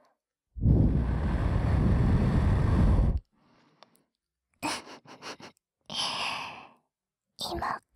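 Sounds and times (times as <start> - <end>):
breath blown gently into the right ear after ear cleaning: 0.6 - 3.2
speech: 7.5 - 7.8.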